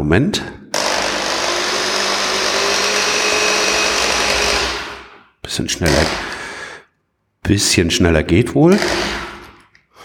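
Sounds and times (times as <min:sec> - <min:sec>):
speech: 0:00.0 - 0:00.6, 0:05.5 - 0:06.4, 0:07.5 - 0:09.2
electric mixer stirring thick paint or filler: 0:00.8 - 0:05.2.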